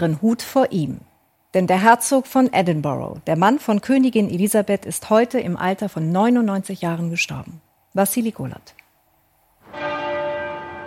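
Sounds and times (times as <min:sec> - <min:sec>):
speech: 0:00.0 - 0:08.8
Westminster Abbey church bell tolling in mourning: 0:09.6 - 0:10.8.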